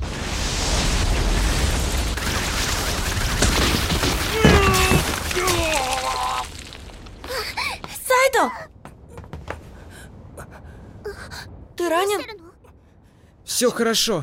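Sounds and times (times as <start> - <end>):
ice daggers spell magical impact burst: 0.0 - 7.2
ice daggers cracking and shattering: 0.2 - 7.8
speech: 11.9 - 12.4, 13.6 - 14.2.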